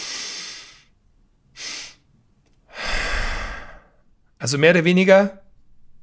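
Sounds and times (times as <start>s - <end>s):
person breathing with a double-inhalation technique: 0.0s - 0.9s, 1.6s - 2.0s, 2.7s - 4.1s
speech: 4.4s - 5.4s.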